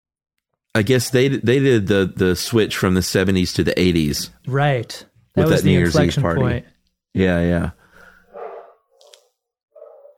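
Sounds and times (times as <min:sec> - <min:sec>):
speech: 0:00.8 - 0:07.8
dogs barking: 0:08.3 - 0:08.9, 0:09.8 - 0:10.1.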